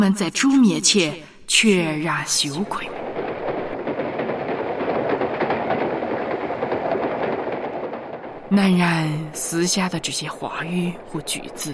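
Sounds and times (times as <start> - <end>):
speech: 0.0 - 3.0, 8.5 - 11.7
train rumbling on tracks: 1.5 - 11.7
faint irregular clicks and rattles of a train: 2.7 - 8.6.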